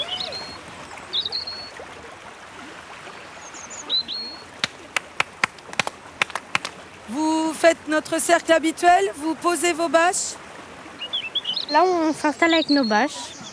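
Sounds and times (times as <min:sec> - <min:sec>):
birds chirping and whistling: 0:00.0 - 0:01.8, 0:11.0 - 0:13.5
small stream trickling: 0:00.0 - 0:13.5
speech: 0:07.6 - 0:10.4, 0:11.7 - 0:13.4.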